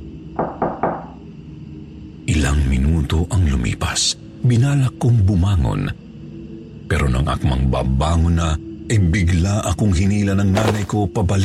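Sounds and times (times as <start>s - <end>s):
knocks on the wooden door of a home: 0.4s - 1.2s
speech: 2.4s - 6.0s, 6.9s - 11.4s.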